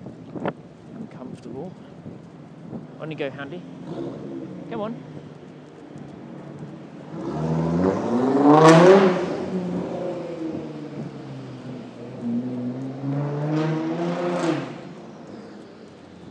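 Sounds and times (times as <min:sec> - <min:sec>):
car engine roar: 0:02.6 - 0:16.2
speech: 0:03.0 - 0:05.2
very loud car driving past: 0:03.6 - 0:04.9, 0:07.0 - 0:16.2.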